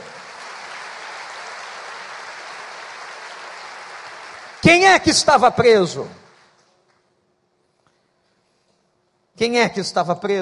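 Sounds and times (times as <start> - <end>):
congregation applauding: 0.0 - 6.9
speech: 4.6 - 6.2, 9.4 - 10.4.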